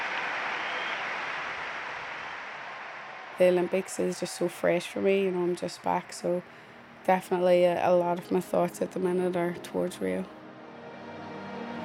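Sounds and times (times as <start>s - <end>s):
huge crowd applauding in a vast arena: 0.0s - 6.2s
speech: 3.4s - 10.4s.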